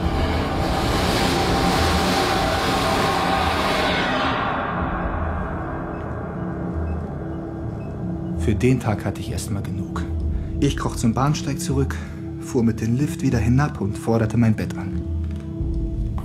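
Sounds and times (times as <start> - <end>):
train rushing past: 0.0 - 8.4
speech: 8.5 - 15.2.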